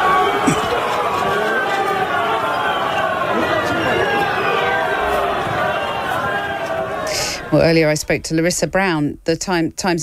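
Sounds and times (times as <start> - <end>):
large crowd booing: 0.0 - 8.0
speech: 7.5 - 10.0.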